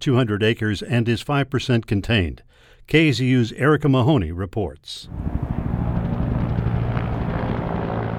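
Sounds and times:
speech: 0.0 - 5.5
helicopter rotor thump: 5.1 - 8.1.

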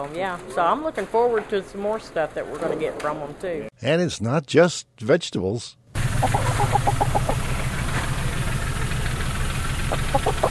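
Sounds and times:
speech: 0.0 - 7.0
hens clucking in a hen house: 6.0 - 7.8, 9.7 - 10.4
steady low rumbling hum: 6.0 - 10.4.

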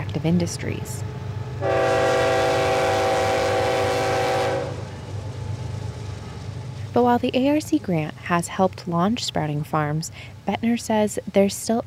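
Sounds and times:
coal train rumbling alongside farm: 0.0 - 11.8
speech: 0.2 - 1.8, 7.0 - 11.8
coal train horn long loud blast: 1.6 - 4.9.

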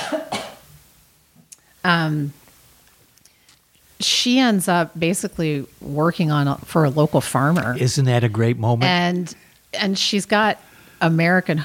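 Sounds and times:
sharp coughs: 0.0 - 0.7
speech: 1.8 - 2.4, 4.0 - 11.6.

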